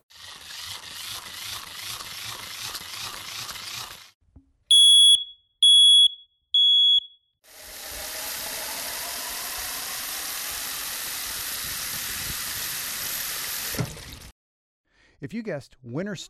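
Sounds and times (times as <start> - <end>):
smoke detector alarm beeping: 4.7 - 7.3
speech: 15.2 - 16.2.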